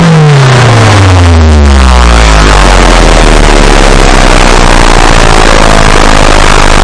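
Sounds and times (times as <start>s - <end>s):
low speaker-destroying subtone: 0.0s - 6.8s.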